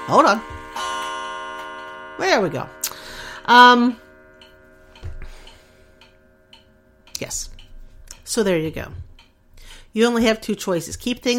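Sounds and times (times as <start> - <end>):
clock chiming the hour: 0.0 - 8.9
speech: 0.1 - 0.6, 2.2 - 2.8, 3.4 - 4.0, 7.2 - 7.5, 8.3 - 9.0, 10.0 - 11.3.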